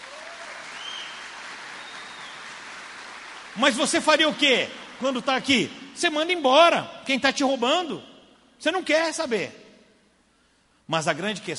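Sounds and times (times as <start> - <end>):
crowd clapping: 0.0 - 5.7
speech: 3.6 - 9.6, 10.9 - 11.5.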